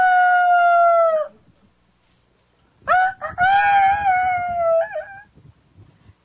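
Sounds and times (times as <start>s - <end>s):
person imitating a rooster crowing: 0.0s - 1.4s, 2.9s - 5.3s.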